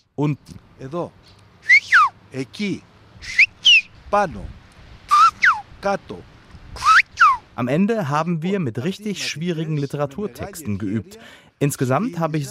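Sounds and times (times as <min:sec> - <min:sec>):
speech: 0:00.2 - 0:01.4, 0:02.3 - 0:03.5, 0:04.1 - 0:04.6, 0:05.8 - 0:06.9, 0:07.6 - 0:12.5
Greek whistled language whistles rising and falling in pitch: 0:01.6 - 0:02.2, 0:03.2 - 0:04.0, 0:05.1 - 0:05.6, 0:06.8 - 0:07.4.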